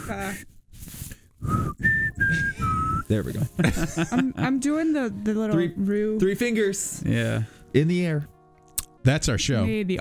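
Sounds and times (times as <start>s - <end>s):
speech: 0.1s - 0.5s, 3.1s - 8.3s, 9.0s - 9.9s
person whistling a short four-note tune: 1.4s - 3.6s
laughter: 3.3s - 4.6s.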